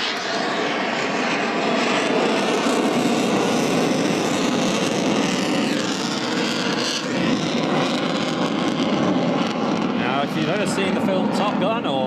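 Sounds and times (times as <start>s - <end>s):
fighter jet engines roaring while flying slowly nose up: 0.0s - 12.0s.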